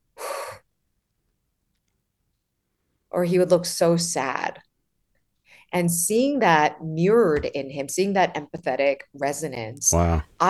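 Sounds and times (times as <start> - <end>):
speech: 3.1 - 4.7, 5.7 - 10.4
person imitating an exhale: 9.9 - 10.3.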